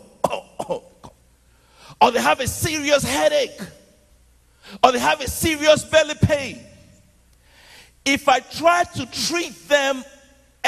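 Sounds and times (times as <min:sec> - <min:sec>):
person coughing: 0:00.0 - 0:01.2
speech: 0:00.7 - 0:00.9, 0:02.0 - 0:03.8, 0:04.6 - 0:06.7, 0:08.0 - 0:10.6.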